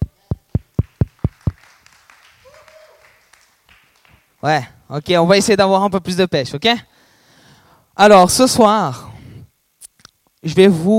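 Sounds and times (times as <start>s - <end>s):
group clapping in unison applauding themselves: 0.4s - 4.4s
speech: 4.4s - 6.9s, 8.0s - 9.1s, 10.4s - 10.9s.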